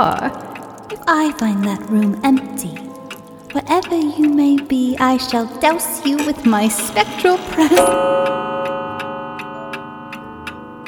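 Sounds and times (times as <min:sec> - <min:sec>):
steady mechanical clock ticking: 0:00.0 - 0:08.1
speech: 0:00.2 - 0:08.5
clock chiming the hour with a resonant ringing tone: 0:05.7 - 0:10.8.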